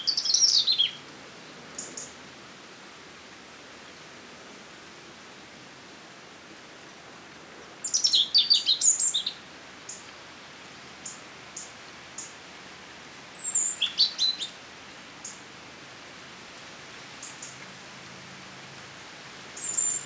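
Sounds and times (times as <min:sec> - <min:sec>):
European robin Erithacus rubecula singing: 0:00.0 - 0:01.0, 0:07.8 - 0:10.0, 0:13.4 - 0:14.6, 0:19.6 - 0:20.0
faint hiss: 0:00.0 - 0:20.0.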